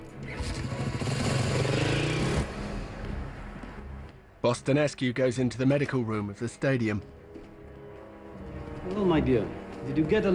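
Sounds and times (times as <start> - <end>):
police motorbike engine roaring as the bike pulls away: 0.0 - 3.3
speech: 4.4 - 7.2, 8.9 - 10.3.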